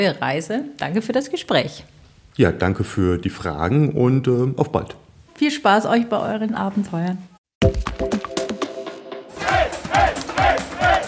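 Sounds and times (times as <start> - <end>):
speech: 0.0 - 8.3
crowd lining a cycling tour route in Bavaria cheering and shouting: 9.3 - 11.0.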